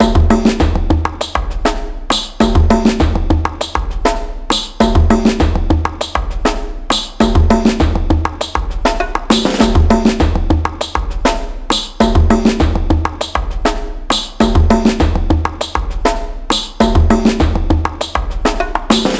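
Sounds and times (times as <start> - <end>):
percussion kit playing at 100 BPM: 0.0 - 19.1.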